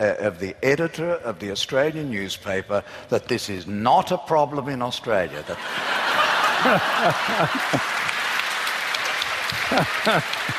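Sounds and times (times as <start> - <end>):
speech: 0.0 - 6.0, 6.6 - 7.9, 9.7 - 10.5
laughter: 5.6 - 8.2, 9.5 - 10.5
studio audience clapping: 5.8 - 10.5.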